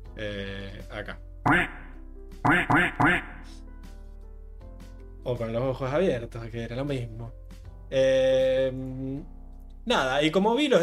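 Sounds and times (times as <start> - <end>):
speech: 0.2 - 1.8, 2.4 - 3.6, 5.2 - 10.8
duck quacking: 1.4 - 3.6.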